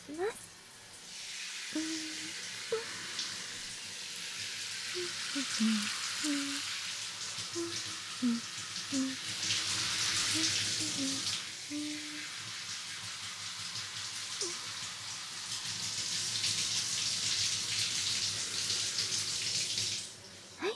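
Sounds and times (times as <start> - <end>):
shower spray rinsing hair: 0.0 - 20.6
faint water gurgles: 1.7 - 3.8, 4.4 - 12.7
speech: 5.6 - 6.0.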